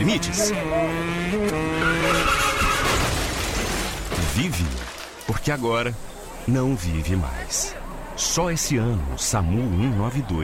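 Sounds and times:
car engine revving hard with a rising whine: 0.0 - 3.1
car tires screeching across the pavement: 0.0 - 6.1
speech: 0.1 - 1.9, 4.4 - 10.4.

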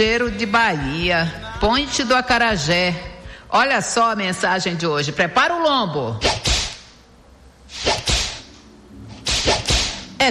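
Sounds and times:
speech: 0.0 - 6.6, 9.5 - 10.2
whip cracks: 6.2 - 6.9, 7.7 - 8.5, 9.2 - 10.2.

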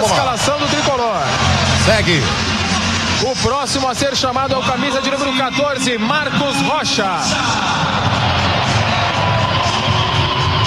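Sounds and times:
speech: 0.0 - 2.5, 3.2 - 8.4
stadium applause and cheering: 0.0 - 3.7, 7.2 - 10.6
large stadium crowd roaring: 0.0 - 5.5, 6.1 - 10.6.

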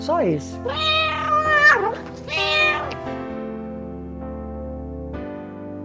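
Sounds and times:
speech: 0.0 - 3.2
cat meowing: 0.6 - 3.1.

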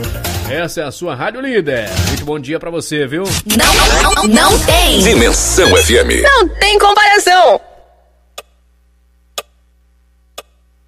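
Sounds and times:
speech: 0.1 - 7.7
clock ticking: 10.4 - 10.6.

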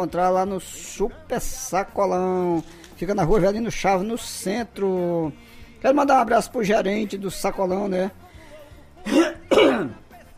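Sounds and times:
speech: 0.0 - 8.2
throat clearing with phlegm stuck in the throat: 9.1 - 10.0.

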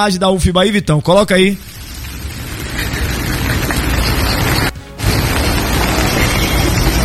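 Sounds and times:
speech: 0.0 - 1.8
heavy rain falling: 1.6 - 7.0.

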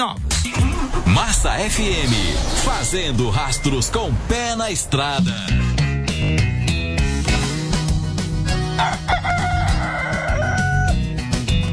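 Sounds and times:
loud steady music: 0.0 - 11.7
speech: 1.2 - 6.5
rooster crowing: 8.7 - 11.1.

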